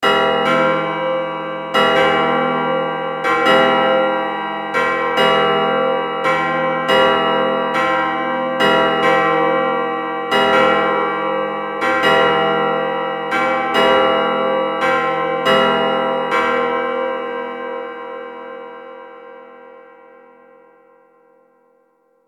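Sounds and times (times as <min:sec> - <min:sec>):
chapel bell: 0:00.0 - 0:22.2.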